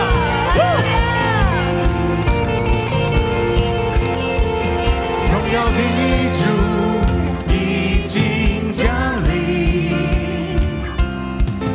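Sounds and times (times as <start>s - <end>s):
church audience cheering and shouting hallelujah during worship: 0.0s - 9.3s
steady worship music: 0.0s - 11.7s.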